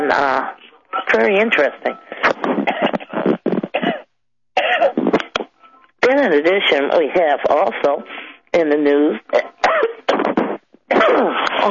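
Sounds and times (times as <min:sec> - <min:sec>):
speech: 0:00.1 - 0:02.3, 0:06.2 - 0:09.5, 0:11.0 - 0:11.6
person coughing harshly: 0:02.1 - 0:05.4, 0:09.4 - 0:11.6.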